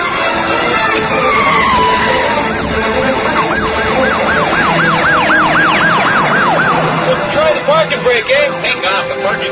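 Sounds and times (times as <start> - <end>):
police car siren yelping: 0.0 - 7.3
low rumble of engine and road noise: 0.0 - 9.5.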